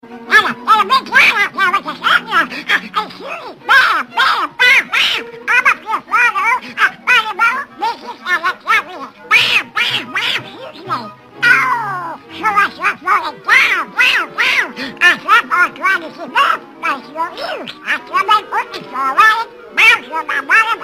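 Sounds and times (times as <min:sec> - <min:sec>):
duck quacking: 0:00.3 - 0:20.8.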